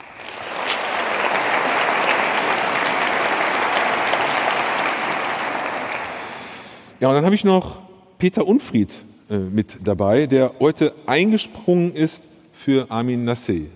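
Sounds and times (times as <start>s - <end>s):
audience applause welcoming a guest: 0.0s - 6.8s
speech: 7.0s - 13.7s.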